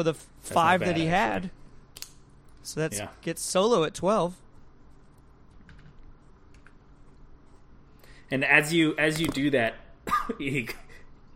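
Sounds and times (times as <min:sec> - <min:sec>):
speech: 0:00.0 - 0:01.6, 0:02.6 - 0:04.4, 0:08.3 - 0:10.8
person imitating a character coughing: 0:10.1 - 0:11.3.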